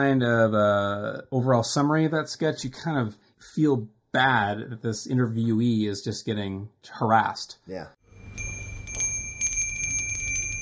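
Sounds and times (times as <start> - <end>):
speech: 0.0 - 8.0
bell ringing: 8.1 - 10.6.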